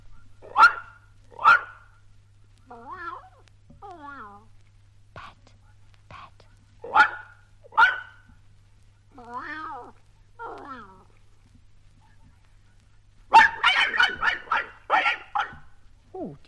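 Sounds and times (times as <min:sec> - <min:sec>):
dog barking: 0:00.4 - 0:01.9, 0:06.8 - 0:08.3, 0:13.3 - 0:15.7
cat meowing: 0:02.7 - 0:04.4, 0:09.2 - 0:11.1.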